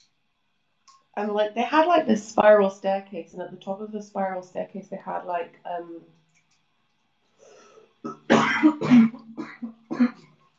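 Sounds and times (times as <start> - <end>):
speech: 1.2 - 6.2
person clearing throat: 8.1 - 10.2.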